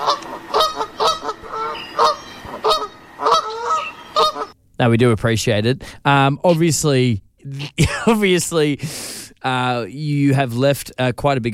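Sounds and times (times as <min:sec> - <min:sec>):
magpie goose honking: 0:00.0 - 0:04.6
faint hiss: 0:01.4 - 0:11.5
speech: 0:04.8 - 0:11.5.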